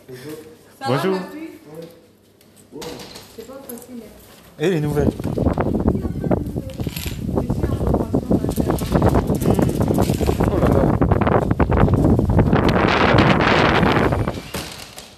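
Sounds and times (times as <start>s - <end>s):
speech: 0.1s - 1.9s, 3.7s - 5.9s
strong wind gusts buffeting the microphone: 5.1s - 14.5s.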